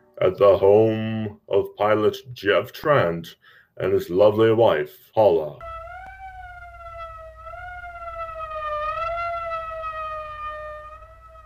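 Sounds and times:
speech: 0.2 - 5.7
low rumbling background: 5.6 - 11.4
police car siren wailing: 5.6 - 11.4.

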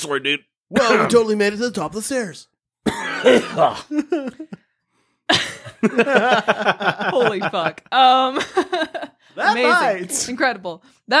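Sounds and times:
speech: 0.0 - 4.6, 5.3 - 11.1
harsh throaty coughs with voiced grunting: 0.7 - 1.2, 2.8 - 4.5
laughter: 3.6 - 4.6, 5.3 - 10.1.

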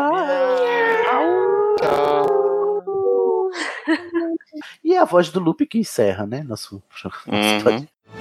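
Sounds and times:
human voices imitating a dog's howl: 0.0 - 3.6
speech: 5.0 - 8.0.

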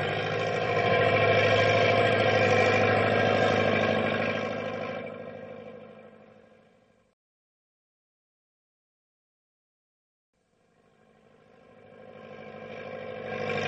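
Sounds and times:
truck engine laboring in low gear through rough going and snow drifts: 0.0 - 7.1, 10.7 - 13.6.

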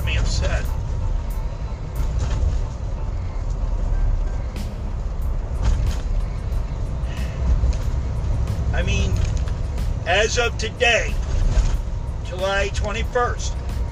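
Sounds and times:
road noise from a car being driven: 0.0 - 13.9
speech: 10.2 - 11.2, 12.4 - 13.6.

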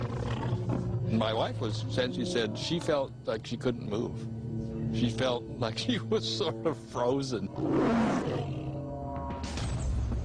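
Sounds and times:
tiger roaring: 0.0 - 1.3, 7.5 - 9.3
speech: 1.1 - 8.4.

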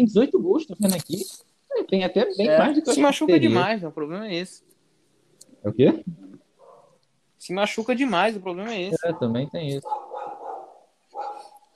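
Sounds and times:
speech: 0.0 - 4.7, 5.6 - 6.2, 7.4 - 10.0
dog barking: 6.6 - 7.0, 8.9 - 11.6.

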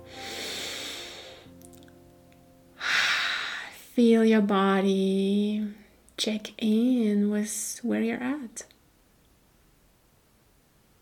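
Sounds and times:
deep breath during a guided relaxation: 0.0 - 1.5, 2.8 - 3.8
speech: 4.0 - 8.7.

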